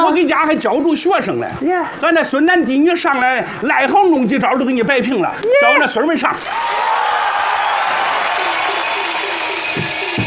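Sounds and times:
speech: 0.1 - 6.9
scattered voices and faint cheers: 5.4 - 10.2
audience clapping: 6.3 - 10.2.

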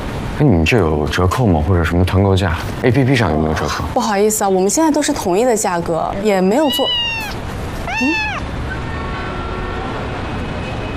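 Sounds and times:
speech: 0.4 - 8.3
guest's cat meowing at a hotel check-in desk: 6.3 - 10.1.

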